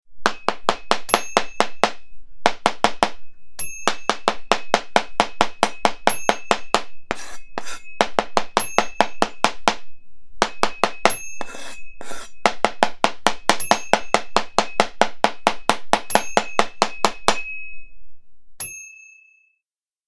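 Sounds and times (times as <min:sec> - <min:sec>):
chef chopping vegetables: 0:00.2 - 0:03.2, 0:03.9 - 0:09.8, 0:10.4 - 0:17.4.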